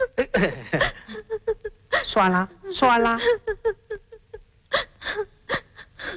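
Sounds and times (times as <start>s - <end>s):
speech: 0.3s - 1.0s, 2.1s - 3.5s
girl crying with gasping sobs and whimpering wails: 0.8s - 2.1s, 3.1s - 6.1s.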